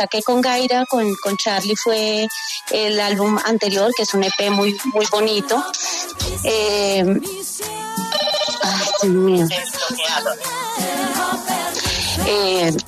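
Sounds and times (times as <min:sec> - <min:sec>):
speech: 0:00.0 - 0:11.6, 0:12.2 - 0:12.8
mobile phone ringtone playing a melodic tune: 0:03.2 - 0:05.5, 0:08.0 - 0:10.4.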